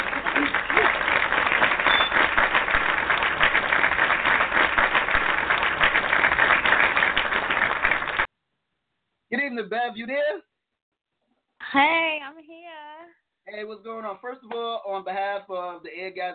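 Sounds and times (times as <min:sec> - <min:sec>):
dense round of applause: 0:00.0 - 0:08.3
speech: 0:09.7 - 0:10.4, 0:11.7 - 0:12.0, 0:13.6 - 0:16.3.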